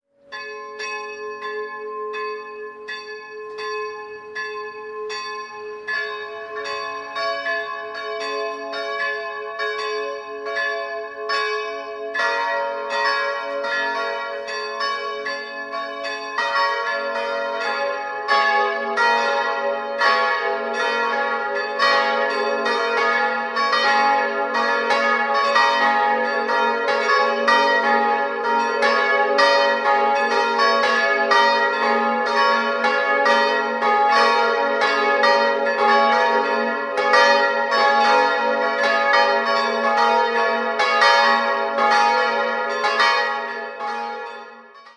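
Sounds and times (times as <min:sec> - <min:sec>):
bells ringing in Enkering: 0:00.3 - 0:44.9.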